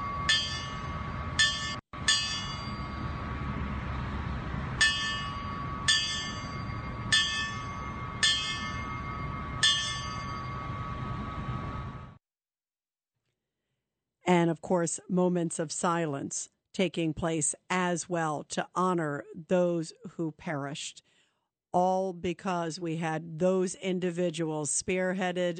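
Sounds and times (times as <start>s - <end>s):
memorial bells tolling at ceremony: 0.0s - 3.8s, 4.6s - 12.1s
loud rumble: 0.0s - 12.2s
speech: 14.3s - 25.5s.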